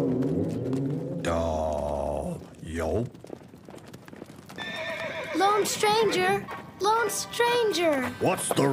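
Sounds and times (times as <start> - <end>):
horse hooves clip-clopping at a trot: 0.0 - 8.7
speech: 2.8 - 3.2, 5.5 - 8.7
saddled horse neighing: 4.6 - 6.4.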